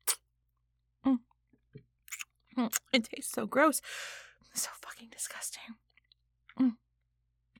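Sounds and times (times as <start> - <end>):
wet mouth sounds of a finger being sucked: 0.0 - 0.2, 2.1 - 2.9
speech: 2.6 - 5.8, 6.6 - 6.8.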